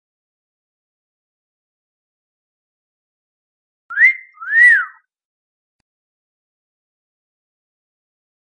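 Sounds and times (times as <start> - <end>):
wolf whistle: 3.9 - 5.0.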